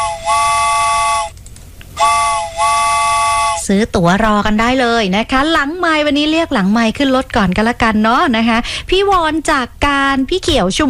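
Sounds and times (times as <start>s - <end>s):
chord-like train whistle blasts: 0.0s - 1.4s, 2.0s - 3.7s
speech: 3.7s - 10.8s.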